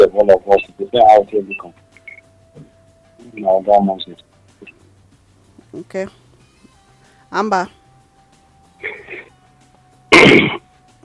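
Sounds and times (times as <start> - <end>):
speech: 0.0 - 1.8, 2.6 - 4.7, 5.7 - 6.2, 7.3 - 7.8
person clearing throat: 8.8 - 9.3, 10.1 - 10.6.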